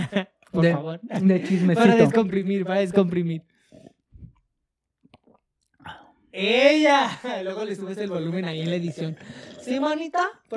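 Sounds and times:
laughter: 0.0s - 0.4s
speech: 0.1s - 3.5s, 5.8s - 10.5s
person sipping and swallowing a drink: 3.7s - 6.2s.

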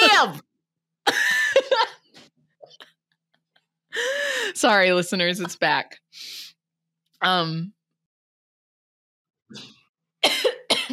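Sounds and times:
speech: 0.1s - 1.2s, 4.0s - 6.4s, 7.2s - 7.8s
harsh rasping cough: 9.6s - 10.9s.

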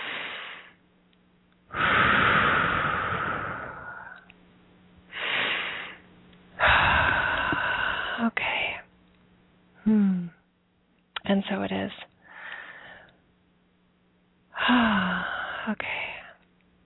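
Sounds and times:
deep breaths during a guided breathing exercise: 0.0s - 0.8s, 1.7s - 4.3s, 5.1s - 8.8s, 12.2s - 13.2s, 14.5s - 16.4s
speech: 11.5s - 12.1s.

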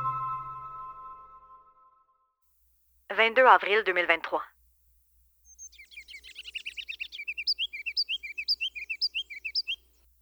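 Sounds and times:
speech: 3.2s - 4.5s
tiny olive-green bird singing loudly in a plum tree: 5.3s - 10.2s.

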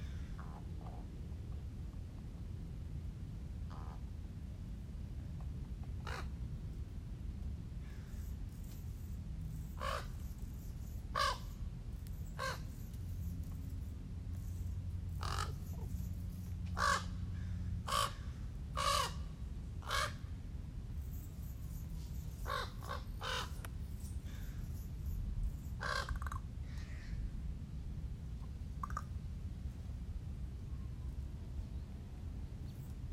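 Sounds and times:
steady low rumble: 0.0s - 33.1s
crow giving harsh rasping caws: 6.0s - 6.3s, 9.8s - 10.2s, 11.2s - 11.6s, 12.4s - 12.7s, 15.2s - 15.7s, 16.8s - 19.2s, 19.8s - 20.2s, 22.4s - 23.6s, 25.8s - 27.2s.

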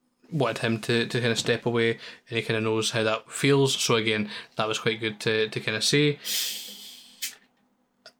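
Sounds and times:
speech: 0.3s - 6.7s
juice drink can opening with fizzing hiss: 6.3s - 7.4s.

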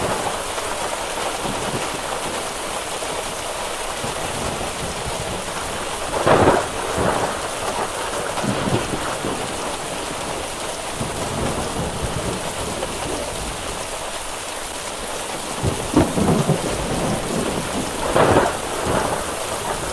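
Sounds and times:
dense rain spattering on surfaces: 0.0s - 19.9s
low thunder rolling: 4.0s - 13.9s, 15.5s - 19.9s.

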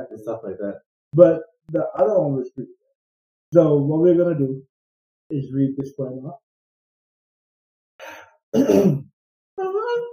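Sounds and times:
speech: 0.0s - 2.8s, 3.5s - 4.7s, 5.3s - 6.4s, 8.5s - 10.1s
person yawning with a moaning exhale: 8.0s - 9.0s.

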